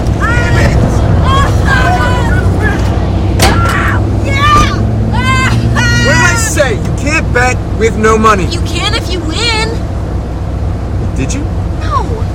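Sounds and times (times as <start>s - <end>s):
van engine droning as it drives away: 0.0s - 12.3s
several raised voices shouting and yelling: 0.2s - 6.8s
speech: 7.8s - 9.2s, 11.2s - 11.5s.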